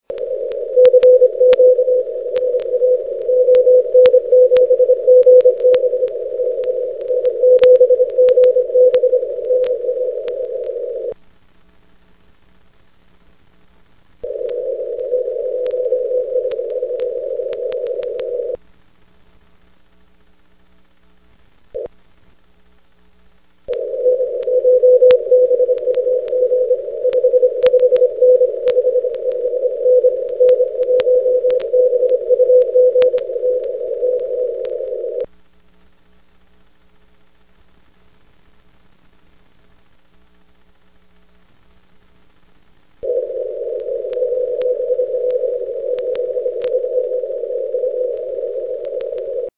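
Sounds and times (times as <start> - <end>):
6 meter amateur radio transmission: 0.0 - 11.2, 14.2 - 18.6, 21.7 - 22.0, 23.7 - 35.3, 43.0 - 49.5.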